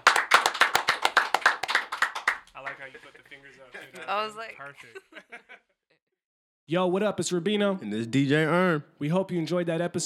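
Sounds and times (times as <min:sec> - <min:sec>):
brisk steady hand clapping: 0:00.0 - 0:02.9
laughter: 0:02.6 - 0:05.8
speech: 0:02.8 - 0:05.8, 0:06.7 - 0:10.0.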